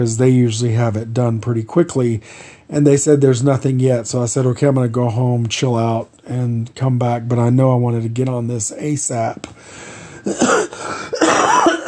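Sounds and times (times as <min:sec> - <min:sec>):
speech: 0:00.0 - 0:11.2
person with a cough lasting several days coughing: 0:10.2 - 0:11.8.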